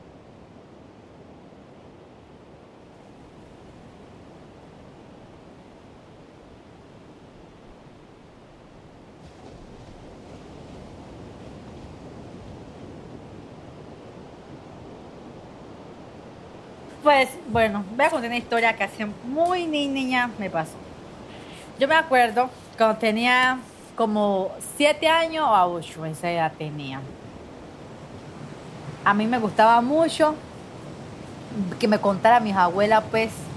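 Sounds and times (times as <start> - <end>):
Pacific Ocean waves: 0.0 - 33.5
speech: 17.0 - 20.8, 21.8 - 27.2, 29.0 - 30.5, 31.6 - 33.5.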